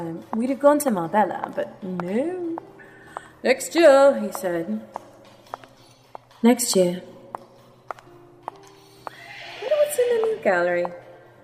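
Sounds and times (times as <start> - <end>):
speech: 0.0 - 2.6, 3.4 - 5.0, 6.4 - 7.2, 10.4 - 11.0
horse neighing: 9.1 - 11.0.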